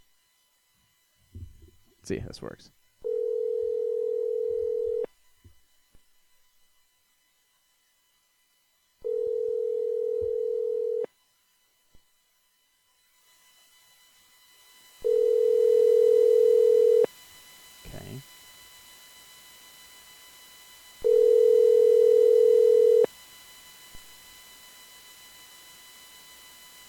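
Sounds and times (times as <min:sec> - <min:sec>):
speech: 0:02.1 - 0:02.8
phone ringback tone: 0:03.0 - 0:05.1, 0:09.0 - 0:11.1, 0:15.0 - 0:17.1, 0:21.0 - 0:23.1.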